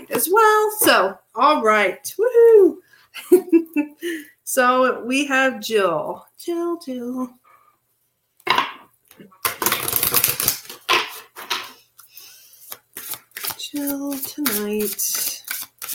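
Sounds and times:
speech: 0.2s - 7.4s, 9.2s - 9.4s, 13.7s - 15.4s
tarot card decks being shuffled and dealt: 9.5s - 11.4s, 12.0s - 15.9s.

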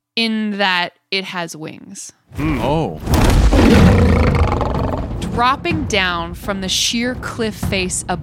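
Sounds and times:
speech: 0.2s - 4.4s, 5.3s - 8.2s
winged lion monster roaring with a rough growling edge: 2.4s - 5.2s.

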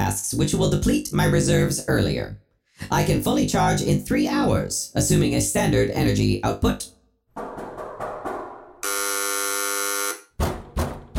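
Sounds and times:
speech: 0.2s - 7.5s
dull knocking or clattering noises: 7.4s - 8.8s
loud harsh doorbell buzzer: 8.8s - 10.4s.

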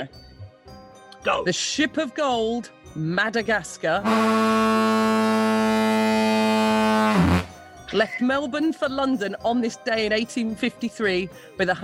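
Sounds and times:
speech: 0.0s - 0.3s, 1.2s - 5.3s, 7.1s - 11.8s
ship's foghorn blast: 4.0s - 7.6s.

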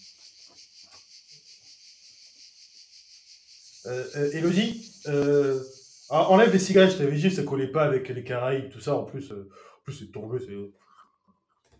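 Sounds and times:
cicadas buzzing: 0.0s - 8.4s
speech: 3.8s - 10.8s.

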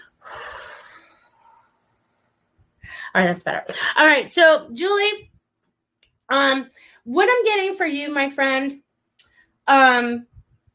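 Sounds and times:
deep breath: 0.0s - 3.2s
speech: 3.1s - 5.3s, 6.3s - 8.8s, 9.7s - 10.3s.

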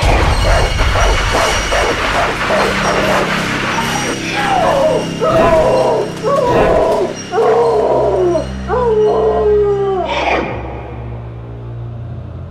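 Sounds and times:
dog barking frantically in rapid bursts: 0.1s - 7.7s
dog whining and whimpering: 5.5s - 10.5s.

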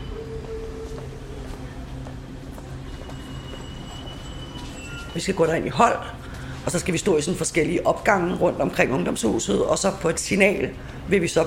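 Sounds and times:
train departing from Hellerup rolling along the rails: 0.0s - 11.4s
faint metallic squealing of train: 2.8s - 6.1s
speech: 5.2s - 11.4s.

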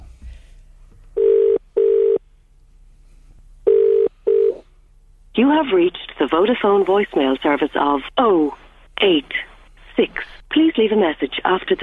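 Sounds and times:
ringback tone of an outgoing phone call: 1.2s - 2.2s, 3.7s - 4.6s
speech: 5.4s - 11.8s.

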